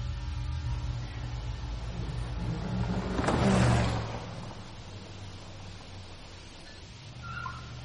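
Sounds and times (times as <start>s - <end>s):
car engine revving as the car pulls up: 0.1s - 7.8s.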